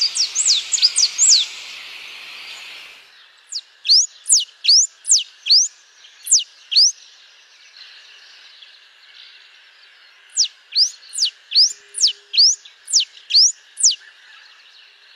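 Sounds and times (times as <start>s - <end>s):
Blue-and-yellow Tanager rapid chatter: 0.0s - 7.0s, 10.2s - 14.1s.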